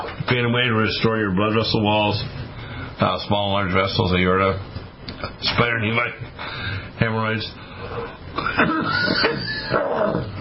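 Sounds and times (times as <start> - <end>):
speech: 0.0 - 2.4, 3.0 - 10.3
person coughing harshly: 8.4 - 10.3.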